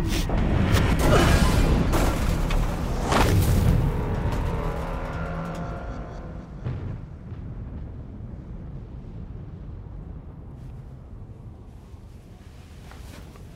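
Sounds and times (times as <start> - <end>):
mechanical drone: 0.0 - 7.9
spaceship with a cracked hull and a failed engine crashing: 0.3 - 8.1
crunching and banging of a crashing spaceship: 0.8 - 7.9.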